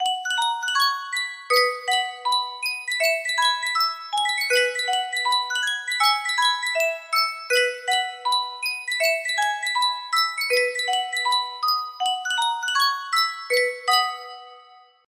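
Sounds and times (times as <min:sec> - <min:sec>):
Sankyo music box playing: 0:00.0 - 0:15.0.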